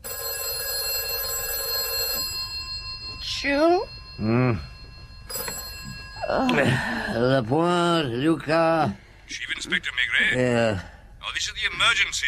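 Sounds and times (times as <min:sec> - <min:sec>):
telephone bell ringing: 0:00.0 - 0:07.4
speech: 0:03.4 - 0:04.7, 0:06.3 - 0:12.2.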